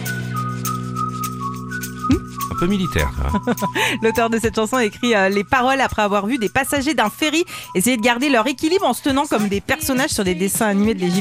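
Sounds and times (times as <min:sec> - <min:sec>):
whistled melody in a pop song: 0:00.0 - 0:08.9
pop backing track with bass and rhythmic percussion: 0:00.0 - 0:11.2
laughter: 0:02.1 - 0:04.2
speech: 0:02.1 - 0:11.2.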